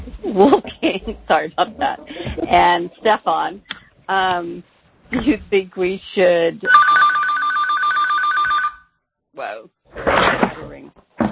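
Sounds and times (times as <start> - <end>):
laughter: 0.0 - 2.8
speech: 0.1 - 7.1, 9.4 - 10.4
telephone ringing with a rapid trilling electronic bell: 6.7 - 9.0.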